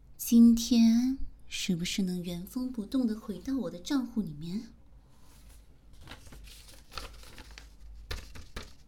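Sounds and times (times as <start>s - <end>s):
speech: 0.2s - 4.8s
signed rental contract paper rustling and crinkling as it is handled: 5.1s - 8.8s.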